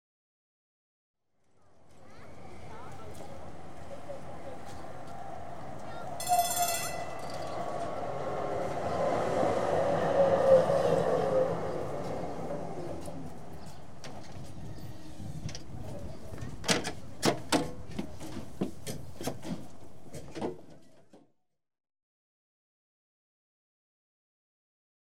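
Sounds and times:
tram approaching: 1.7 - 20.2
tram doors opening: 4.4 - 21.0.

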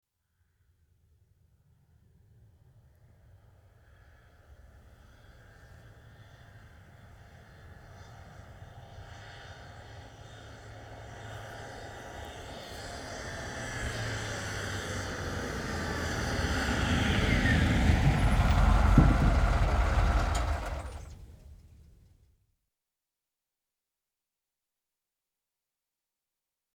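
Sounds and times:
ambulance approaching and stopping: 9.6 - 21.6
ambulance idling: 12.9 - 21.6.

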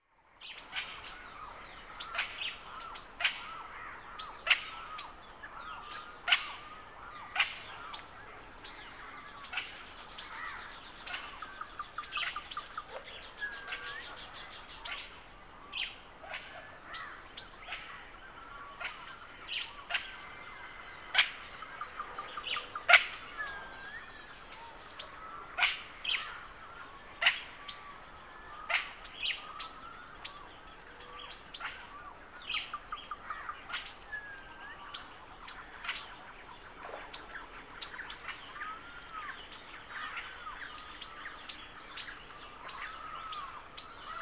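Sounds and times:
morning birdsong by a pond in rural South America: 0.4 - 44.1.

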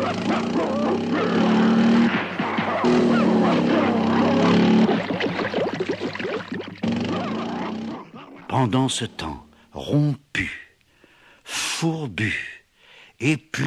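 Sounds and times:
motorcycle engine roaring as it is ridden off: 0.0 - 5.4, 6.8 - 8.2
two large dogs barking and yipping while chasing a motorcycle: 0.0 - 5.6, 6.8 - 8.5
speech: 8.6 - 10.6, 11.5 - 12.5, 13.2 - 13.6.

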